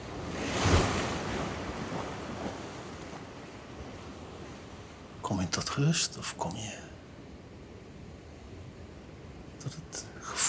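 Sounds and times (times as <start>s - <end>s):
sea waves breaking on shore: 0.0s - 5.2s
faint wind: 0.0s - 10.4s
speech: 5.3s - 6.9s, 9.6s - 10.4s.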